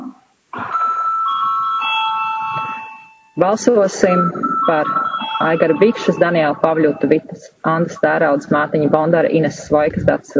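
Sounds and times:
parliamentary electric bell ringing to call a vote: 0.7 - 3.5, 4.1 - 7.0
speech: 3.4 - 10.3.

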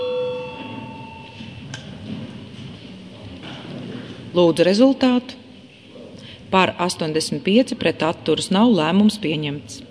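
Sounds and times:
electronic call bell in a parliament chamber before a vote: 0.0 - 1.6
room hum: 0.0 - 9.8
speech: 4.4 - 5.4, 6.5 - 9.8.

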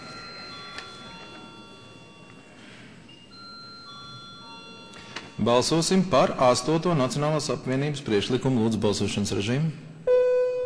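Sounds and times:
parliamentary chamber bell ringing before a vote: 0.0 - 7.0
low murmur of room noise: 0.0 - 10.6
speech: 5.4 - 9.9.

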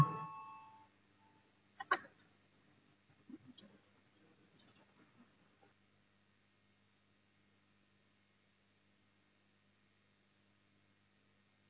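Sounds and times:
electronic parliamentary voting bell tone: 0.0 - 0.8.

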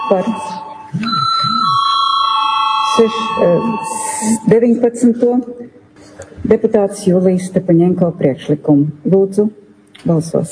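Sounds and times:
electric bell ringing in a parliament chamber to call a vote: 0.0 - 4.9
speech: 0.1 - 1.9, 3.0 - 5.8, 6.4 - 10.4.

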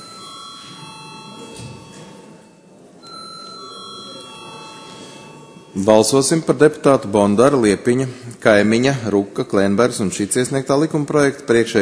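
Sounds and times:
electric bell ringing in a parliamentary chamber to call a vote: 0.0 - 6.4
speech: 5.8 - 11.7.

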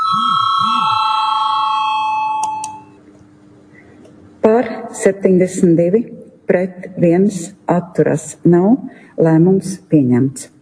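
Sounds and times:
electric parliament voting call bell ringing: 0.0 - 2.9
speech: 5.0 - 10.6.

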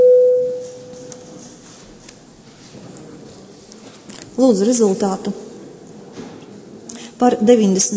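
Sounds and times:
electronic bell-like signal tone in a parliament voting chamber before a vote: 0.0 - 0.8
speech: 4.4 - 5.4, 7.2 - 7.9.

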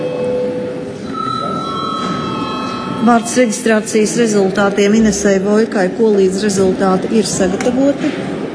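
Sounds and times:
electric bell ringing in a parliament chamber to call a break: 0.0 - 4.6
speech: 3.0 - 8.4.

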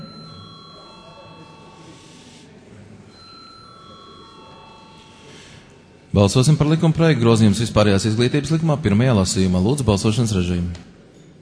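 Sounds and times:
electric bell ringing in a large room: 0.0 - 2.5, 3.1 - 5.8
low murmur of chatter: 0.0 - 11.4
speech: 6.2 - 11.0.

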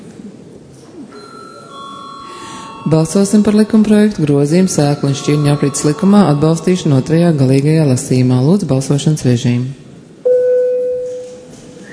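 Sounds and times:
low noise: 0.0 - 11.9
electric bell rung in a parliament chamber to call a vote: 1.1 - 8.1
speech: 2.9 - 9.8.

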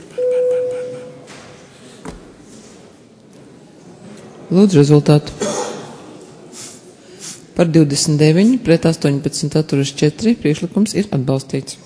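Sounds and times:
electronic bell tone rung to call a parliamentary vote: 0.2 - 1.2
speech: 4.5 - 5.5, 7.6 - 11.8.

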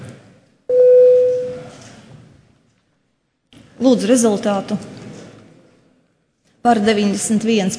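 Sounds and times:
parliament voting bell signal electronic tone: 0.7 - 1.7
faint room murmur: 1.3 - 7.7
speech: 3.8 - 5.0, 6.6 - 7.7.

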